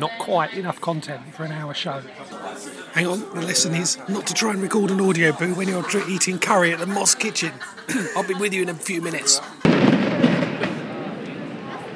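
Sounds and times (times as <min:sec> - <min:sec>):
speech: 0:00.0 - 0:10.4
indistinct voices murmuring: 0:00.0 - 0:11.9
laughter: 0:02.3 - 0:10.9
fireworks bursting with loud cracking booms: 0:09.6 - 0:11.9.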